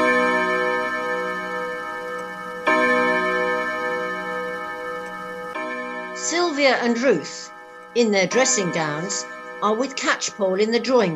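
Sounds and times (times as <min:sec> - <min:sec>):
clock chiming: 0:00.0 - 0:11.1
speech: 0:06.6 - 0:11.1.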